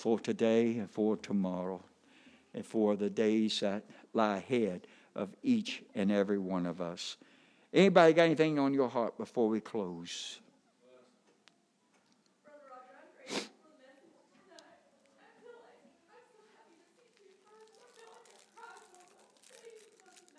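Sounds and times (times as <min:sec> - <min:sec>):
speech: 0:00.0 - 0:01.9, 0:02.6 - 0:10.4, 0:13.3 - 0:13.5
person sneezing: 0:13.3 - 0:13.6.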